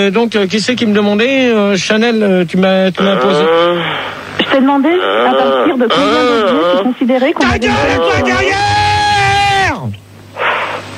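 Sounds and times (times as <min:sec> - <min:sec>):
speech: 0:00.0 - 0:08.9
man yelling loudly into someone's ear: 0:07.4 - 0:09.9.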